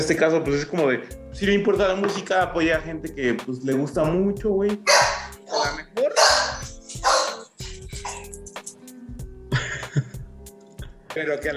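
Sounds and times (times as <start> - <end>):
speech: 0.0 - 6.4, 11.2 - 11.5
small dog barking in high-pitched yaps: 4.9 - 8.3.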